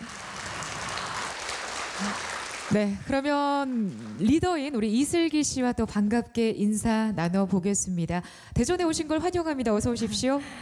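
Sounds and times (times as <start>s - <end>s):
audience applause at a live music stage event: 0.0s - 3.0s
speech: 2.0s - 10.6s.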